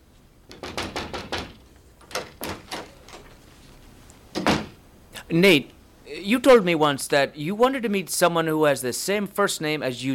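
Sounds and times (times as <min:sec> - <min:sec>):
knocking on a door: 0:00.5 - 0:01.6
speech: 0:05.3 - 0:10.1.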